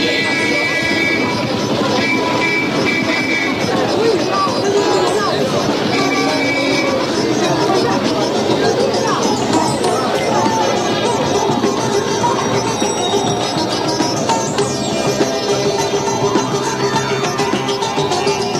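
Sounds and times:
car horns: 0.0 - 3.7
city street traffic noise: 0.0 - 18.5
dense crowd chatter on a busy city street: 0.0 - 18.5.

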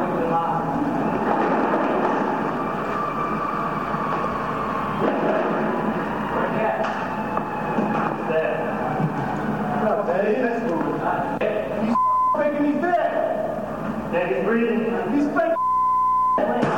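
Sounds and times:
busy crowded speech: 0.0 - 15.4
censor beeps: 11.9 - 12.6, 15.5 - 16.6.

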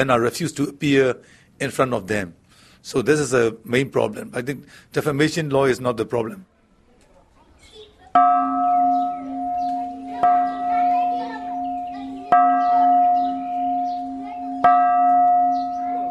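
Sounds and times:
speech: 0.0 - 6.5, 8.2 - 8.6
chatter: 6.2 - 16.0
children's voices: 6.5 - 16.0
large bell at the Shwedagon Pagoda in Yangon struck by tourists: 8.2 - 16.0.

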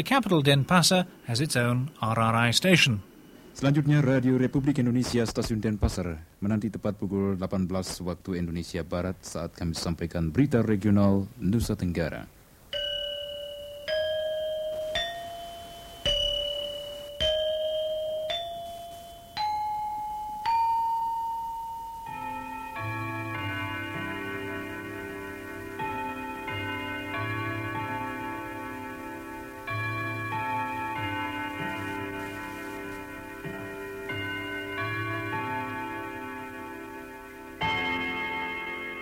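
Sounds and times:
speech: 0.0 - 12.4
Westminster-style clock chime: 12.7 - 39.0.

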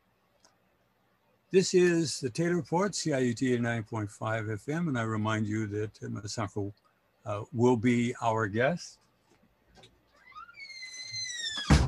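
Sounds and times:
speech: 1.5 - 9.0
door hinge squealing: 10.2 - 11.8
door closing with a heavy thump: 11.4 - 11.8.

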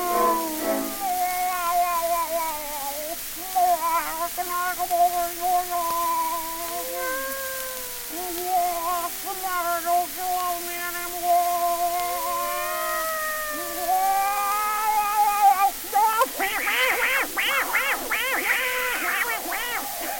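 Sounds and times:
human voice imitating a cat meowing and yowling: 0.0 - 20.1
laughter: 13.4 - 20.1.

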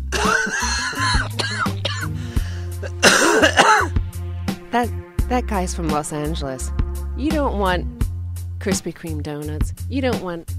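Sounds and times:
man coughing: 0.0 - 3.9
speech: 4.7 - 8.0, 8.6 - 10.5.

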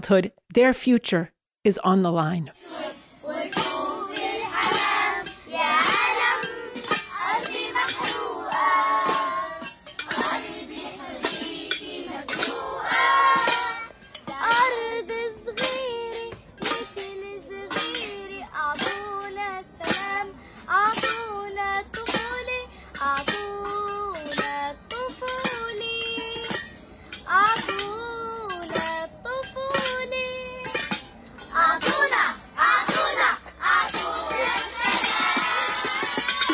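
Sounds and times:
speech: 0.0 - 3.7
children chanting and singing together: 2.6 - 13.9, 31.5 - 36.5
hungry children banging on pots and pans in Gaza: 3.2 - 36.5.

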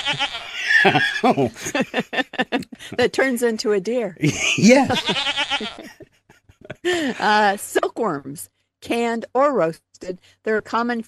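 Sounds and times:
goat bleating: 0.0 - 1.2, 4.9 - 5.9
laughter: 0.0 - 3.3, 4.2 - 7.6
speech: 0.1 - 6.0, 6.8 - 11.0.

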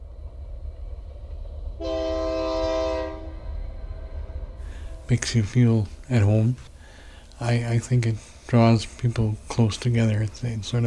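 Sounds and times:
low rumble: 0.0 - 10.8
distant train horn passing through: 1.8 - 5.3
speech: 5.1 - 6.7, 7.4 - 10.8.

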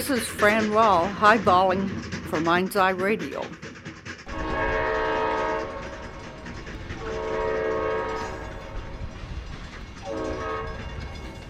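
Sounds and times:
speech: 0.0 - 3.6
train cars rumbling and rattling: 0.0 - 11.4
train horn blasts: 4.3 - 5.8, 7.0 - 8.6, 10.1 - 10.9.

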